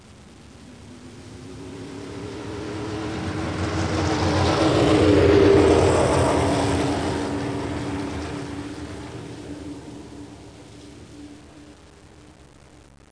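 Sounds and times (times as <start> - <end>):
indy racing cars: 0.6 - 11.7.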